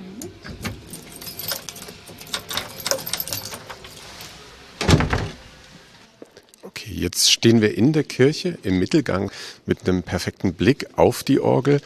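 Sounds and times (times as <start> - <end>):
lock of a church door turning with a heavy clunk: 0.3 - 4.2
church door opening: 0.3 - 5.8
keys jangling and clinking: 0.4 - 4.4
speech: 6.9 - 11.8.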